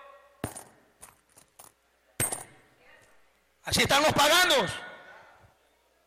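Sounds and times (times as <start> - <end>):
coins dropped during a church service: 0.4 - 2.6
speech: 3.7 - 4.8.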